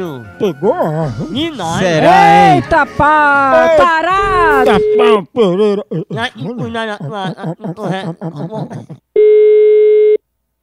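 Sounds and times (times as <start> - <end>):
speech: 0.0 - 9.8
chuckles: 4.7 - 9.1
telephone busy tone after a dropped call: 9.2 - 10.2.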